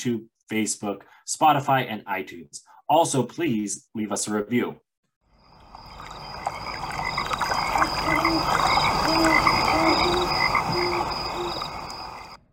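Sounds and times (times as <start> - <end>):
speech: 0.0 - 4.8
dense chorus of frogs croaking while fighting: 5.3 - 12.4.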